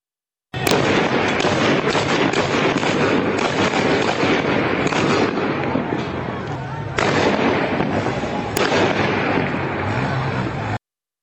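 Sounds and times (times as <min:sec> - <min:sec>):
heavy gunfire bursts during street protest in Izeh: 0:00.6 - 0:10.7
constant roar of street protest crowd: 0:00.6 - 0:10.8
indistinct voices: 0:04.4 - 0:10.8.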